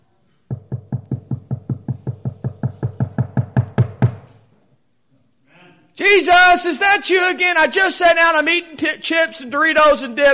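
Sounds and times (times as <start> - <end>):
knocking on a door: 0.5 - 4.3
speech: 6.2 - 10.3.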